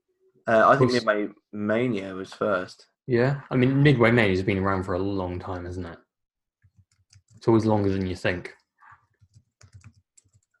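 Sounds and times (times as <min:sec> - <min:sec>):
speech: 0:00.5 - 0:06.0, 0:07.4 - 0:08.6
fast typing on a computer keyboard: 0:06.6 - 0:07.7, 0:09.1 - 0:10.5.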